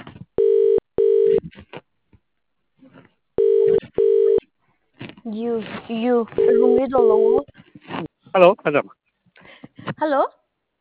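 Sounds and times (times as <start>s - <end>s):
telephone ringing with a buzzing double-ring tone: 0.4s - 1.4s, 3.4s - 4.4s, 6.4s - 7.4s
speech: 5.3s - 7.6s, 8.4s - 9.0s, 10.0s - 10.4s.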